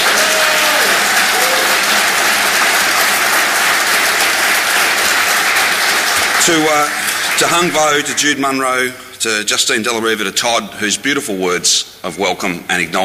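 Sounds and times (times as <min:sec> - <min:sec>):
audience applause: 0:00.0 - 0:08.4
speech: 0:06.4 - 0:13.0.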